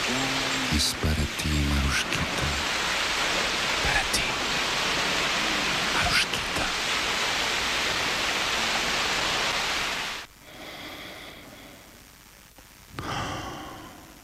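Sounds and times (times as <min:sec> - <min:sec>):
ocean waves crashing: 0:00.0 - 0:10.3
speech: 0:00.8 - 0:02.1.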